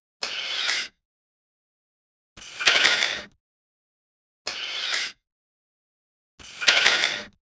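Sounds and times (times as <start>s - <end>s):
quick push-in slide: 2.4s - 3.4s, 4.5s - 5.2s, 6.4s - 7.3s.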